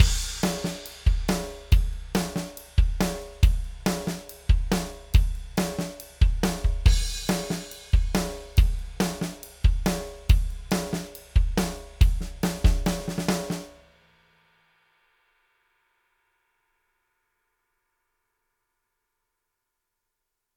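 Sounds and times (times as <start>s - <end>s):
drums: 0.0s - 14.2s.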